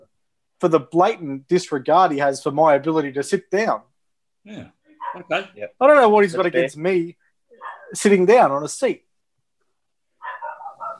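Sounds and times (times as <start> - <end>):
speech: 0.6 - 7.2, 7.9 - 9.1
dog barking: 5.0 - 5.4, 7.6 - 8.0, 10.2 - 10.9.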